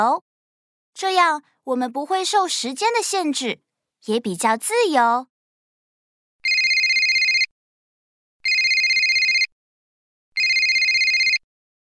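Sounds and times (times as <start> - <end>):
speech: 0.0 - 0.3, 1.0 - 5.3
telephone ringing with bright electronic trill: 6.5 - 7.5, 8.5 - 9.5, 10.4 - 11.5.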